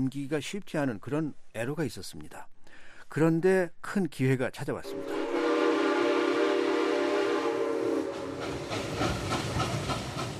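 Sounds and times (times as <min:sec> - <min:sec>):
speech: 0:00.0 - 0:02.5, 0:03.1 - 0:05.1
steam train whistle blowing: 0:04.9 - 0:09.0
hissing steam from a working locomotive: 0:05.0 - 0:10.3.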